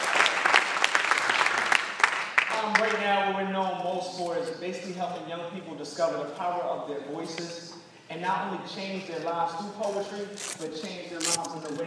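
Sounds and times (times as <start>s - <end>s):
audience applause: 0.0s - 2.6s
individual sharp claps: 0.0s - 2.9s
speech: 3.6s - 11.8s.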